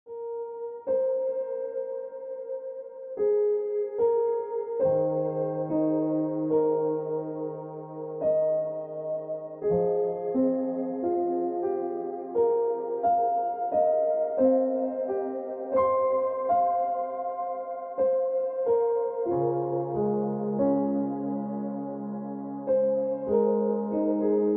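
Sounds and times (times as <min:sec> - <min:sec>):
piano ringtone music: 0:00.1 - 0:24.5.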